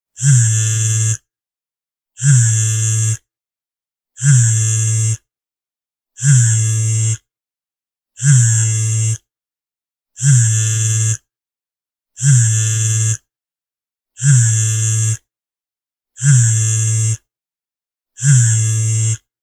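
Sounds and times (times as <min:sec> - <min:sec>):
phone vibrating: 0:00.2 - 0:01.2, 0:02.2 - 0:03.2, 0:04.2 - 0:05.2, 0:06.2 - 0:07.2, 0:08.2 - 0:09.3, 0:10.2 - 0:11.3, 0:12.2 - 0:13.2, 0:14.2 - 0:15.2, 0:16.2 - 0:17.2, 0:18.2 - 0:19.3.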